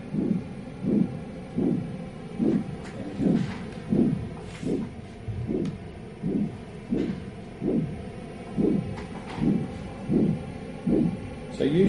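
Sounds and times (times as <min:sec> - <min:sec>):
amplified heartbeat from finger sensor thumping: 0:00.0 - 0:11.5.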